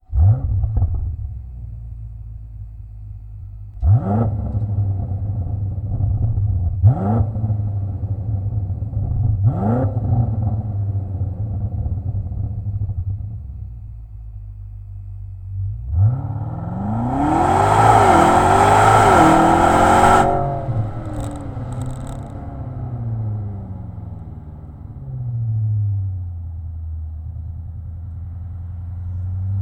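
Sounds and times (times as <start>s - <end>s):
BMW M8 REMUS axle-back exhaust: 0.0s - 29.6s.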